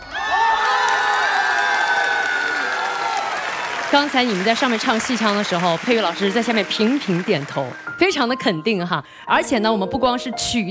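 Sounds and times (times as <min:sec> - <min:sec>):
large crowd cheering and whooping: 0:00.0 - 0:07.8
audience applause: 0:00.0 - 0:08.0
speech: 0:03.9 - 0:10.6.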